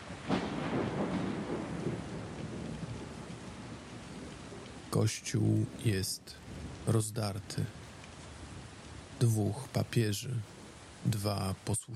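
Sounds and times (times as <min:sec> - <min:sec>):
low rumble of thunder in Rome: 0:00.0 - 0:04.9
steady hissing rainfall in Rome: 0:00.0 - 0:11.9
speech: 0:04.9 - 0:07.8, 0:09.2 - 0:11.9.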